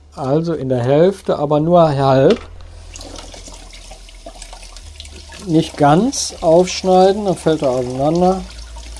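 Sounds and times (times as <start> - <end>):
speech: 0.2 - 2.5, 5.4 - 8.6
tap water running while a halved leek is washed in a kitchen: 2.6 - 8.9.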